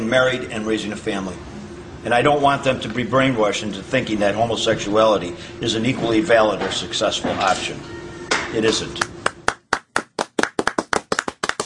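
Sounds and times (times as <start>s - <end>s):
speech: 0.1s - 9.1s
audience clapping: 8.3s - 11.6s.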